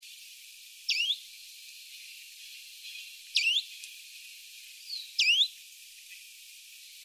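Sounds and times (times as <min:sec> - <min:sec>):
Phylloscopus proregulus call: 0:00.9 - 0:01.2, 0:02.9 - 0:03.7, 0:04.9 - 0:05.6.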